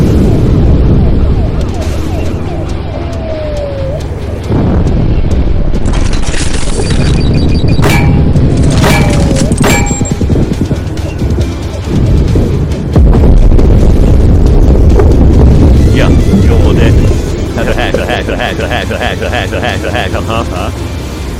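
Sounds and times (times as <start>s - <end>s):
dense continuous roar: 0.0s - 21.3s
missile explosions in a tank video game: 13.0s - 17.9s
laughter: 17.6s - 20.8s.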